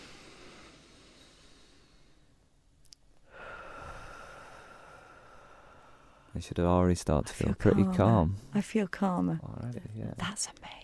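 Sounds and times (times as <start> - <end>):
slow breath drawn in through the nose: 0.0 - 2.3, 3.3 - 6.3
speech: 6.4 - 10.8.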